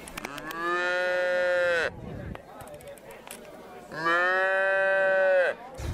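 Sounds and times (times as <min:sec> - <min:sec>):
cow mooing: 0:00.3 - 0:01.9, 0:04.0 - 0:05.6.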